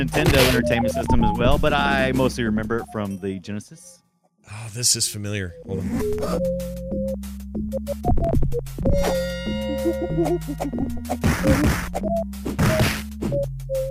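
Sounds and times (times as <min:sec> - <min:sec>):
chiptune-style music from a 1995 beat-em-up game on the Sega Genesis: 0:00.0 - 0:03.4, 0:05.8 - 0:13.9
speech: 0:00.0 - 0:13.9
video game punching hit effects: 0:11.1 - 0:13.3.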